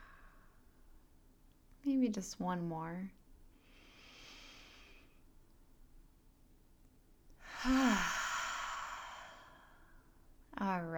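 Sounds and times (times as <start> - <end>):
speech: 1.9 - 3.2
deep breath in through the nose and out through the mouth: 3.6 - 5.2, 7.4 - 10.2
soft voiced sigh: 7.5 - 9.4.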